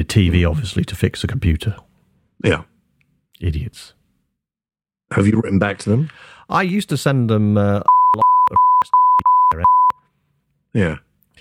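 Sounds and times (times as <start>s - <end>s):
speech: 0.0s - 2.7s, 3.4s - 4.0s, 5.1s - 8.6s, 9.5s - 9.8s, 10.8s - 11.0s
high-pitched censor bleep tone: 7.9s - 10.0s.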